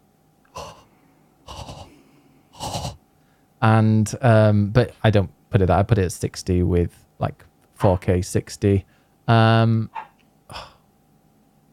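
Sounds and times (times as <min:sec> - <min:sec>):
speech: 0:03.6 - 0:10.7
dog barking in a house: 0:10.0 - 0:10.2.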